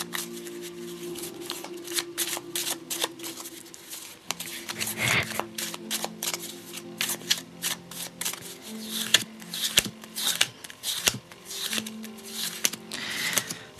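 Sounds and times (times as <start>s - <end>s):
tarot cards being shuffled: 0.0s - 13.7s.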